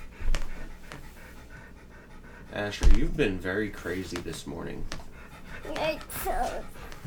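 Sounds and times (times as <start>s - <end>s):
dog panting: 0.0s - 7.0s
speech: 2.5s - 5.0s, 5.6s - 6.9s.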